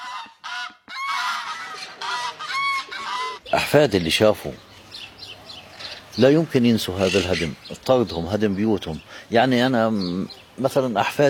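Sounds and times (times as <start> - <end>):
flock of geese honking: 0.0 - 3.6, 6.8 - 7.6
speech: 3.5 - 4.7, 6.2 - 11.2.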